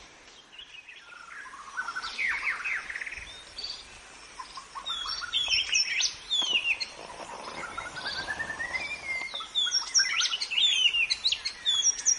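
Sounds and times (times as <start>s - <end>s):
white-rumped shama singing in forest: 0.0s - 12.1s.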